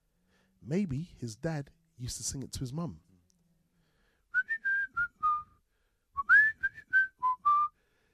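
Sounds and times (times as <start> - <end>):
speech: 0.6 - 3.1
person whistling a tune alone: 4.3 - 5.6, 6.2 - 7.8.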